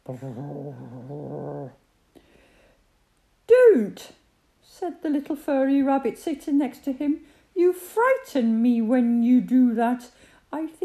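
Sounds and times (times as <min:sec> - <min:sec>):
human voice imitating a fat teddy bear's growl: 0:00.0 - 0:01.8
speech: 0:00.1 - 0:01.8, 0:03.8 - 0:10.8.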